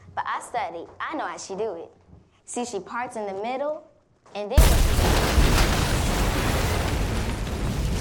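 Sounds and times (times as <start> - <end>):
speech: 0.4 - 5.1
bomb explosion: 4.6 - 8.0.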